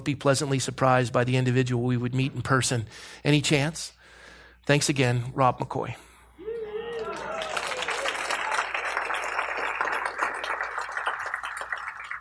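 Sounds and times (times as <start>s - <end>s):
speech: 0.0s - 4.0s, 4.6s - 6.1s
audience clapping and applause: 6.9s - 12.1s.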